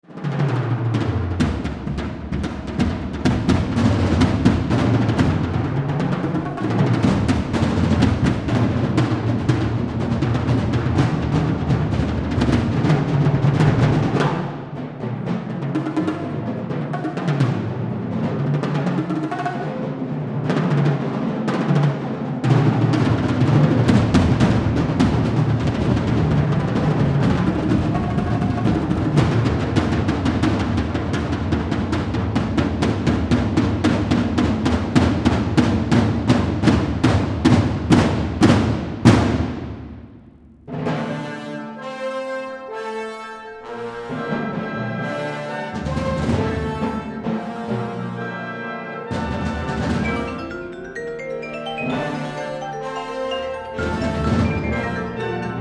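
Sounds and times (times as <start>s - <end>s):
percussion concert band: 0.0s - 55.6s.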